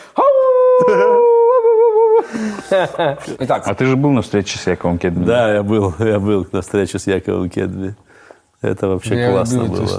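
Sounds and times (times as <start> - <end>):
person imitating a dog howling and yelping: 0.2 - 2.2
speech: 0.8 - 1.2, 2.7 - 9.9.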